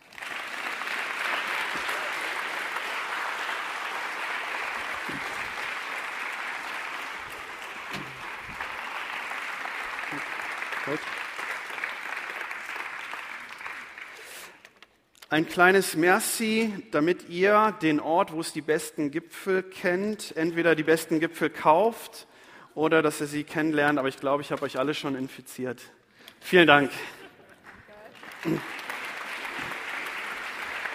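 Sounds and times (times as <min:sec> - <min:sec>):
audience applause: 0:00.0 - 0:14.6, 0:27.6 - 0:30.9
speech: 0:15.3 - 0:27.2, 0:28.4 - 0:28.8.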